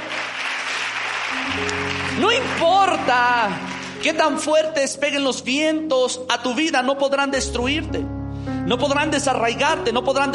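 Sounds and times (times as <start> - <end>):
crowd applauding: 0.0 - 4.7
speech: 1.4 - 10.3
sustained keyboard chords: 1.4 - 10.3.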